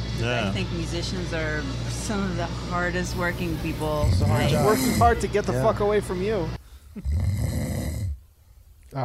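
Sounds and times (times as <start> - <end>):
speech: 0.2 - 7.4
deep rumbling snore: 3.7 - 5.2, 7.0 - 8.2.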